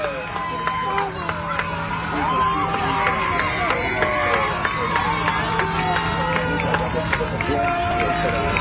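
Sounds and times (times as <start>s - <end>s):
dense crowd shouting and cheering in celebration: 0.0s - 8.5s.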